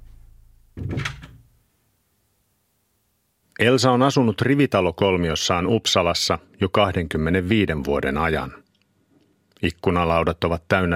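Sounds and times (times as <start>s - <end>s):
door thudding shut: 0.8s - 1.5s
speech: 3.6s - 8.6s, 9.6s - 10.9s.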